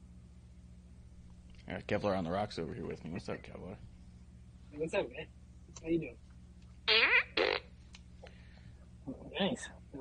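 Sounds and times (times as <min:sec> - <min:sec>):
faint hum: 0:00.0 - 0:09.9
speech: 0:01.7 - 0:04.0, 0:04.7 - 0:06.2, 0:09.4 - 0:09.9
electronic fart noises from a toy gun: 0:06.8 - 0:07.8.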